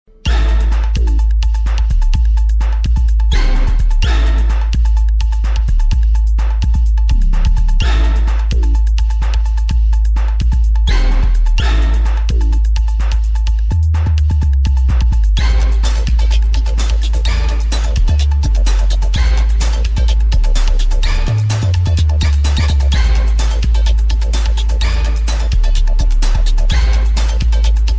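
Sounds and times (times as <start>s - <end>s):
full bass music: 0.0s - 27.9s.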